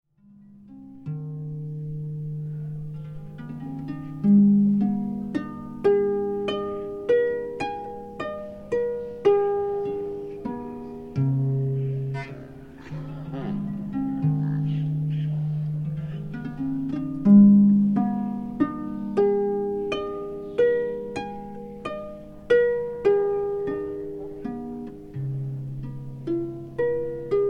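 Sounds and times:
harp playing outdoors: 0.2 - 27.4
background crowd chatter: 11.8 - 16.8.

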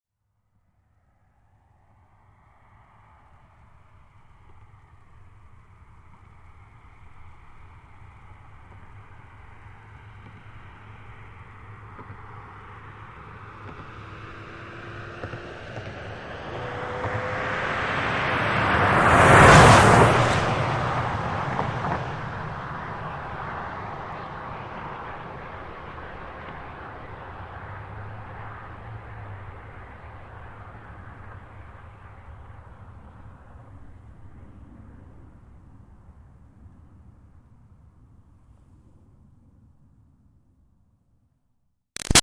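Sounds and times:
2005 Toyota Highlander V6 passing by very fast: 9.6 - 31.3.

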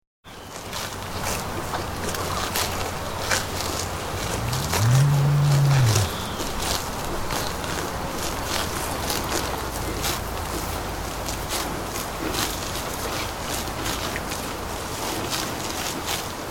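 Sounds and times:
cattle feeding with crunching, rustling and tearing: 0.5 - 16.5
cow giving a low drawn-out moo: 4.2 - 6.8.

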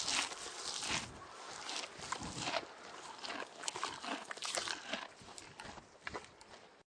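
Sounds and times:
horse chewing hay: 0.0 - 6.2.

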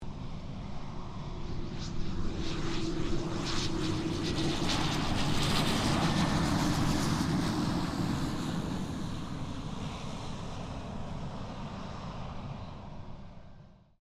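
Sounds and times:
1985 PC-9A military trainer aircraft landing: 0.1 - 13.6.

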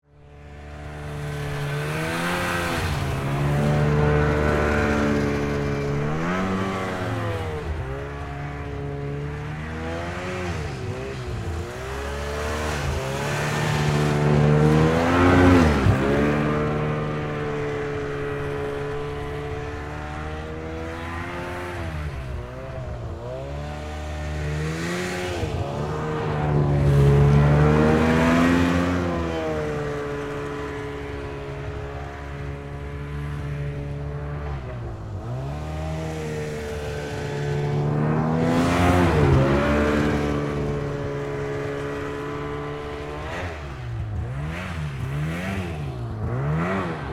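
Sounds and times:
Yamaha Exciter 440 snowmobile: 0.0 - 47.1.

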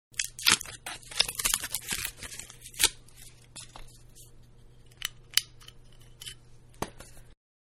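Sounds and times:
champagne foil being unwrapped: 0.2 - 5.0.

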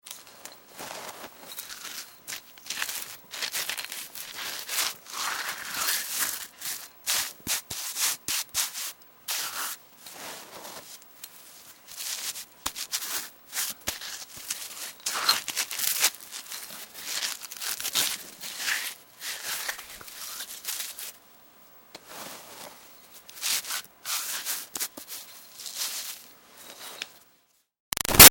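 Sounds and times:
gritty dirt debris smearing: 0.7 - 21.2, 23.4 - 26.2.

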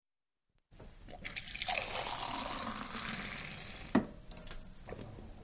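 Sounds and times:
half a pint of beer pulled in a public house: 1.0 - 5.2.

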